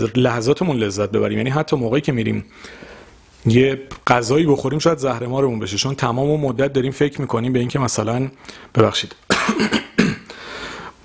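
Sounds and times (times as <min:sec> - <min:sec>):
speech: 0:00.0 - 0:09.8
person coughing loudly with raspy exhale: 0:09.3 - 0:10.4.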